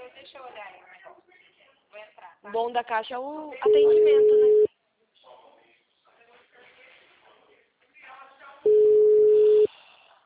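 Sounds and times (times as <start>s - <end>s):
speech: 2.4s - 4.6s
telephone busy signal: 3.6s - 4.7s, 8.7s - 9.7s.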